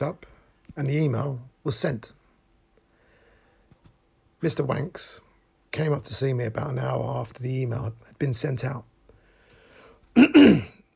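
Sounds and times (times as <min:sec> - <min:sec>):
speech: 0:00.0 - 0:02.2, 0:04.4 - 0:08.9, 0:10.2 - 0:10.7
gravelly throat clearing: 0:10.2 - 0:10.8.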